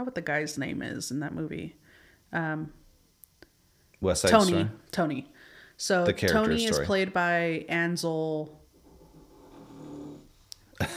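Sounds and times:
speech: 0.0 - 2.8, 4.0 - 8.6
dog low rumbling snore-like breath: 8.8 - 10.4.

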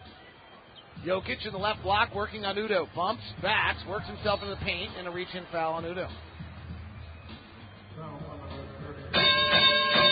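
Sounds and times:
basketball broadcast commentator talking: 1.0 - 6.2, 8.0 - 9.2
speech: 1.0 - 6.3
bell chime signaling a basketball player reaching 30 points: 9.2 - 10.1.

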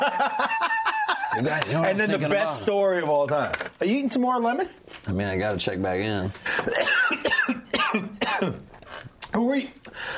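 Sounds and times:
laughter: 0.0 - 1.9
speech: 1.4 - 6.7, 7.9 - 8.7, 9.3 - 9.9
person coughing harshly: 6.6 - 8.6.

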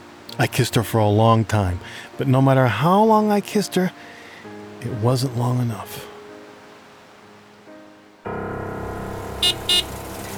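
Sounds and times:
speech: 0.3 - 4.2, 4.8 - 6.1
car horn toots: 9.4 - 10.1.

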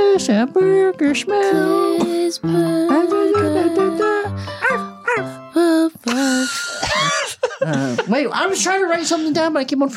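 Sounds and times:
speech: 0.1 - 4.1, 8.2 - 9.9
laughter: 2.9 - 4.2, 6.1 - 8.3
person imitating a dog with barks, yips and a whining yelp: 2.9 - 5.3.

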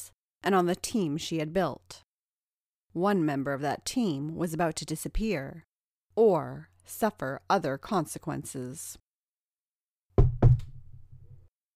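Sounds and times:
speech: 0.4 - 2.0, 2.9 - 9.0
knocks on a wooden office door: 10.2 - 11.4.

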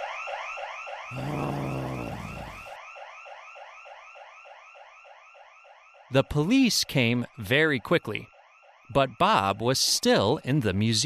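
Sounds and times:
museum burglar alarm warbling: 1.1 - 2.6
speech: 6.1 - 8.3, 8.9 - 11.0.

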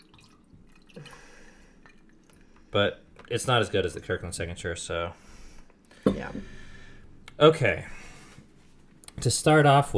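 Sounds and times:
drink trickling and splashing into a glass: 0.0 - 2.4
speech: 2.7 - 5.2, 6.1 - 6.6, 7.4 - 8.0, 9.2 - 9.9.

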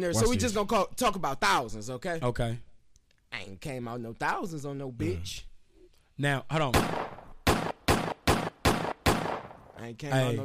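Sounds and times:
speech: 0.0 - 2.7, 3.3 - 5.5, 6.2 - 7.0, 9.8 - 10.4
gunshots: 6.7 - 9.7.

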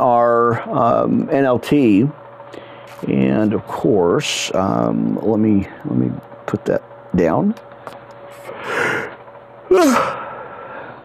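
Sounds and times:
speech: 0.0 - 8.0, 9.7 - 10.2
loud yawn: 9.7 - 10.8.

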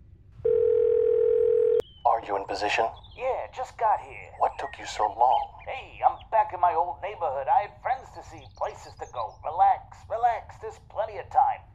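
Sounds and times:
phone dial tone: 0.4 - 1.8
speech: 2.2 - 11.7.

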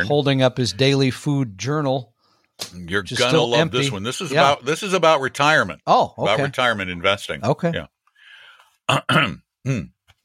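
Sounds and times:
speech: 0.0 - 8.0, 8.9 - 10.0
person clearing their throat: 8.9 - 10.0.

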